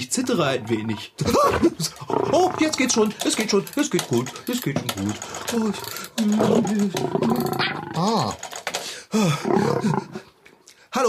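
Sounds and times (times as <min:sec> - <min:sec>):
lion roaring: 0:00.2 - 0:02.9, 0:05.3 - 0:08.3, 0:09.4 - 0:10.2
speech: 0:00.2 - 0:08.5, 0:09.1 - 0:10.2
laughter: 0:01.2 - 0:02.2.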